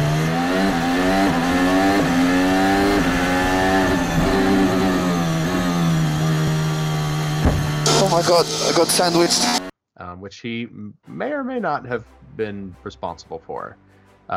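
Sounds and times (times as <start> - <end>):
Formula 1 car engine screaming recorded onboard through gear changes: 0.0 - 9.7
speech: 8.2 - 9.6, 10.2 - 14.3.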